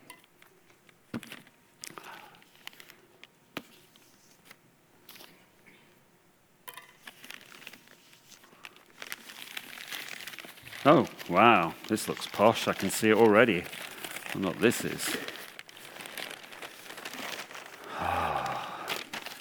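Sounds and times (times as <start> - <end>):
brown paper package crinkling and tearing as it is unwrapped: 7.0 - 19.3
speech: 10.9 - 13.8, 14.4 - 15.4.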